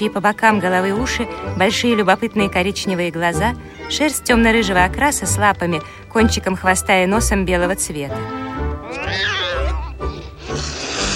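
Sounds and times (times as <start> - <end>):
speech: 0.0 - 9.4
white cat meowing: 8.9 - 10.0.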